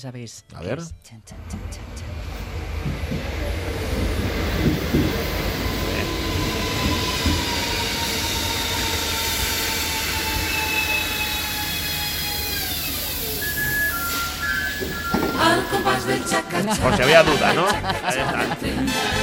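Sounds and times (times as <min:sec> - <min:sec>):
speech: 0:00.0 - 0:02.2, 0:15.8 - 0:19.2
train rumbling past: 0:01.3 - 0:18.1
train wheels clattering over the rails: 0:02.2 - 0:08.0
high metallic train wheel squeals: 0:05.6 - 0:16.2
laughter: 0:15.4 - 0:19.2.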